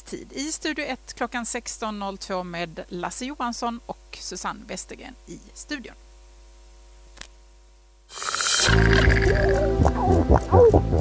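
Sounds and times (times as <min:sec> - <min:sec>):
speech: 0:00.1 - 0:06.0, 0:08.8 - 0:10.9
seals grunting underwater: 0:08.2 - 0:10.9.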